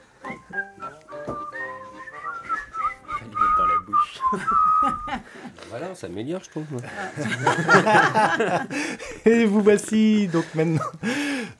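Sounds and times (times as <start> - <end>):
person trying to whistle: 0.2 - 5.2
laughter: 4.1 - 5.7, 6.8 - 9.3, 10.2 - 11.5
speech: 4.3 - 4.6, 5.7 - 11.5.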